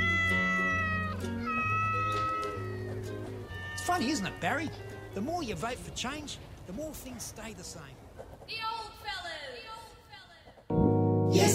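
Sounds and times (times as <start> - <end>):
cat meowing: 0.0 - 5.0
speech: 3.9 - 8.7.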